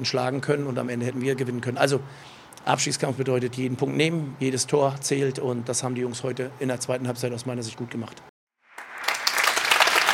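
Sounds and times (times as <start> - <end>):
speech: 0.0 - 8.3
spontaneous studio audience applause: 8.7 - 10.1.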